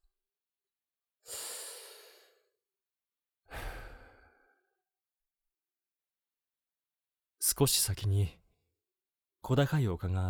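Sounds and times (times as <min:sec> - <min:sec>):
slow deep breaths: 0:01.2 - 0:02.6, 0:03.4 - 0:04.8
speech: 0:07.4 - 0:08.4, 0:09.4 - 0:10.2.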